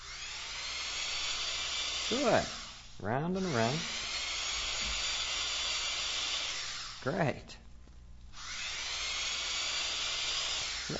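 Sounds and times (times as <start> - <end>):
voice imitating a drill's whirring: 1.2 - 7.5, 8.4 - 10.9
speech: 2.1 - 4.0, 7.0 - 7.6.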